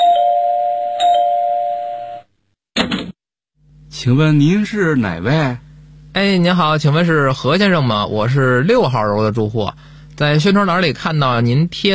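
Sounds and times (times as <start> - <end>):
home electronic doorbell chime: 0.0 - 2.3
speech: 4.0 - 5.6, 6.2 - 11.9.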